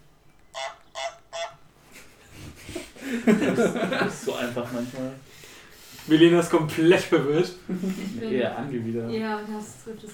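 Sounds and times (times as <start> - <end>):
video game goose honking: 0.5 - 1.6
laughter: 2.0 - 4.8
speech: 3.1 - 5.3, 6.0 - 10.1.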